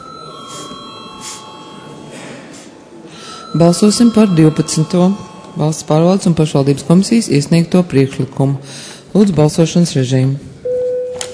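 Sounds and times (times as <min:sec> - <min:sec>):
bell rung in a parliament chamber to call members for quorum: 0:00.0 - 0:02.5, 0:03.1 - 0:07.3
steady tonal hum: 0:00.0 - 0:07.6
speech: 0:03.5 - 0:10.5.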